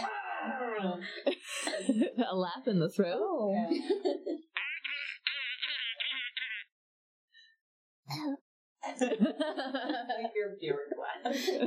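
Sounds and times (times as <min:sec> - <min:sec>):
voice imitating a dolphin with squeaks and chirps: 0:00.0 - 0:01.0, 0:04.6 - 0:06.6
laughter: 0:00.0 - 0:02.5, 0:03.7 - 0:06.6, 0:08.9 - 0:11.6
speech: 0:00.5 - 0:04.5, 0:08.1 - 0:11.6.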